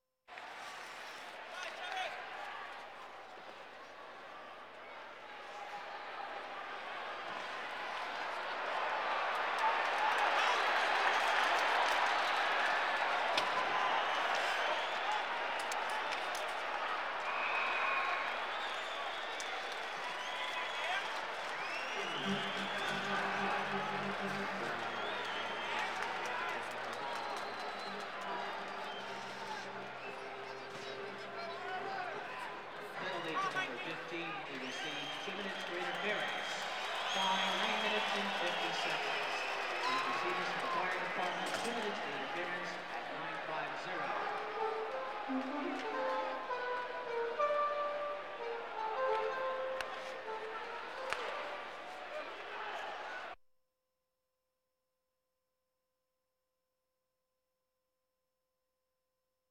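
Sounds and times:
sports crowds: 0.3 - 53.4.

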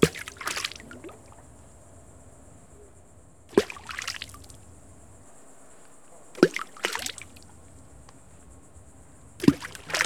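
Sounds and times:
water splashing on pebbles: 0.0 - 1.4, 3.5 - 4.6, 6.2 - 7.6, 9.4 - 10.0.

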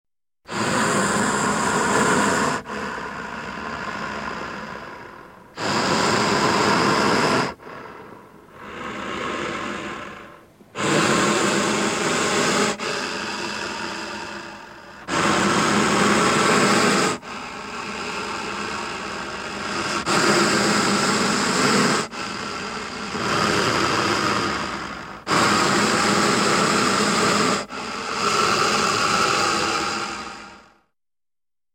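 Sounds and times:
dragon: 0.5 - 30.8.

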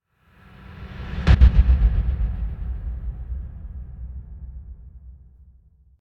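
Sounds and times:
deep muted drum impact hits with echo: 1.0 - 5.2.

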